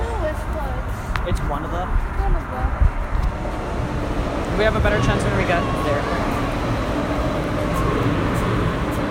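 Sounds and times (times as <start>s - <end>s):
train in motion rumbling, heard from inside the carriage: 0.0s - 9.0s
speech: 1.5s - 2.9s, 4.6s - 6.4s
faint high squeaks from wheels or rails: 3.3s - 9.0s.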